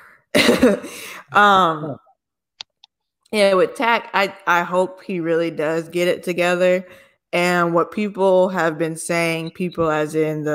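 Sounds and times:
harsh coughing after choking on water: 0:00.4 - 0:01.0
speech: 0:00.6 - 0:02.0, 0:03.3 - 0:10.5.

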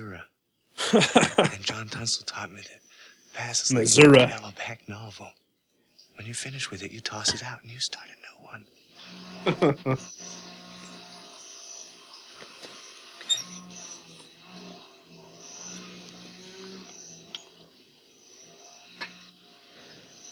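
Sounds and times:
laughter: 0:00.8 - 0:02.4, 0:03.5 - 0:04.5, 0:09.4 - 0:10.0
speech: 0:00.9 - 0:02.8, 0:03.4 - 0:05.4, 0:06.2 - 0:10.4
power tool running outside a building: 0:09.0 - 0:19.9.

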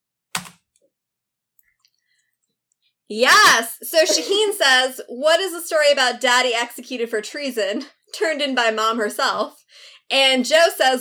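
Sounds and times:
typing on a computer keyboard: 0:00.3 - 0:00.6
speech: 0:03.1 - 0:11.0.

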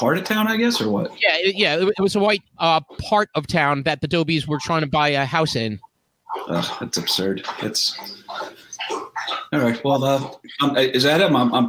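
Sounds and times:
speech: 0:00.0 - 0:11.6
dog eating food from a bowl: 0:06.4 - 0:09.5.

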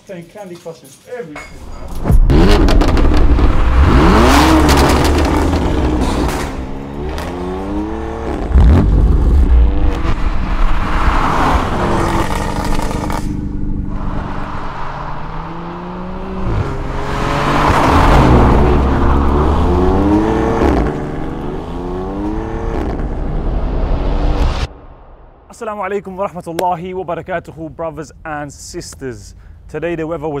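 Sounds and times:
speech: 0:00.1 - 0:03.0, 0:25.7 - 0:30.3
road and wind noise: 0:01.5 - 0:25.5
BMW M4 Competition convertible engine revving while driving on a hot day: 0:01.9 - 0:23.5.

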